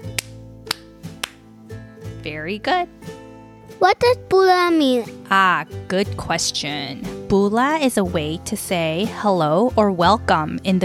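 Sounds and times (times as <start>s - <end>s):
sharp hand claps as part of a Fijian kava greeting: 0.0s - 1.4s
soft steady music: 0.0s - 10.8s
speech: 2.3s - 10.8s.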